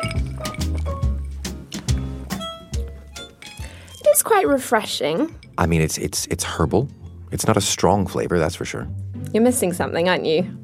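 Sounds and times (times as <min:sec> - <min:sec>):
glasses of non-alcoholic spirit and soda over ice clinking in a toast: 0:00.0 - 0:07.7
speech: 0:04.2 - 0:10.6.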